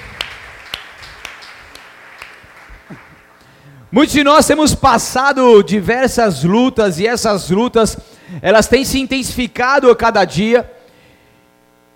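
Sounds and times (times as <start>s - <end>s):
crowd clapping in rhythm during a prayer: 0.0s - 3.6s
room noise: 0.0s - 11.9s
speech: 2.9s - 3.1s, 3.9s - 10.7s.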